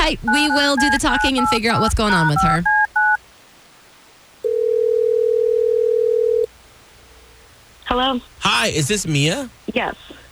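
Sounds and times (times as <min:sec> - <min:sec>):
speech: 0:00.1 - 0:02.8, 0:07.9 - 0:10.2
two-tone telephone beep: 0:00.3 - 0:03.2, 0:04.5 - 0:06.5.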